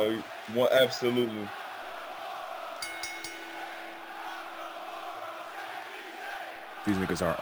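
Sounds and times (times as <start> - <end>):
speech: 0.0 - 1.6, 6.8 - 7.4
large wrestling arena crowd roaring and cheering: 0.0 - 7.4
shouting from the crowd: 0.0 - 7.4
whistling from the crowd: 1.6 - 7.4.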